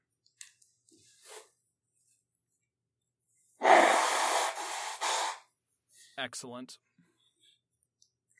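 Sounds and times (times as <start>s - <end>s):
person blowing nose reacting to cat dander: 3.6s - 5.5s
speech: 6.2s - 6.9s.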